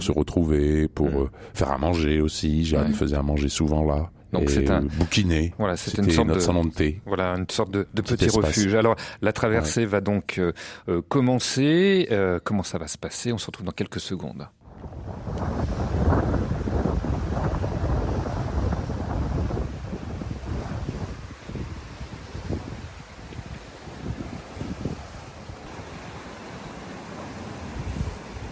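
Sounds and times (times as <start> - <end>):
speech: 0.0 - 16.0
strong wind buffeting the microphone aboard a sailboat at sea: 14.6 - 28.5
waves slapping against a sailboat's hull: 15.0 - 28.5.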